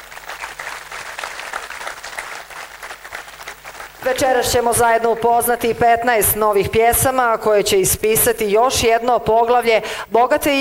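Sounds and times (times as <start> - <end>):
audience applause at a song festival competition evening: 0.0 - 4.7
speech: 4.0 - 10.5.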